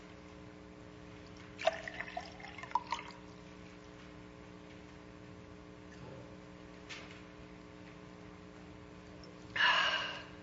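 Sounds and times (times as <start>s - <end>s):
low steady hum: 0.0s - 10.4s
water trickling and clinking into a glass: 1.3s - 3.5s
person gasping after finishing a drink: 9.6s - 10.4s.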